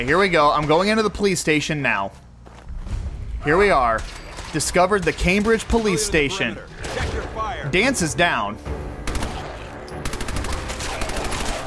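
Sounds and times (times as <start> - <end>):
speech: 0.0 - 2.2, 3.4 - 8.8
video game gunfire shooting ghouls at a police station: 9.0 - 11.6.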